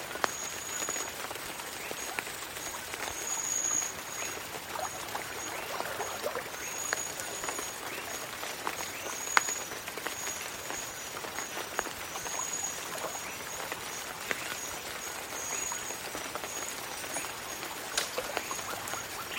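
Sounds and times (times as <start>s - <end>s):
dense patter of rain in a jungle swamp: 0.0s - 19.3s
sharper clicks and drips: 0.0s - 19.3s.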